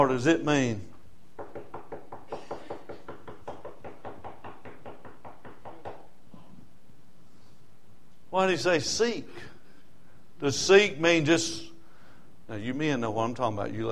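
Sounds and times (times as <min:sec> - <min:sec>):
speech: 0:00.0 - 0:00.9, 0:08.4 - 0:09.5, 0:10.4 - 0:11.7, 0:12.5 - 0:13.9
rapid knocking on a hard surface: 0:01.4 - 0:06.1.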